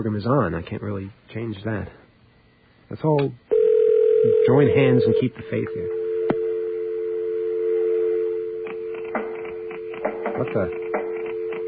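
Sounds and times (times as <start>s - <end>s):
speech: 0.0s - 2.0s, 2.9s - 3.4s, 4.2s - 6.0s, 10.4s - 10.8s
telephone dial tone over a phone line: 3.5s - 11.6s
phone line clicks: 5.9s - 6.6s, 7.8s - 11.6s.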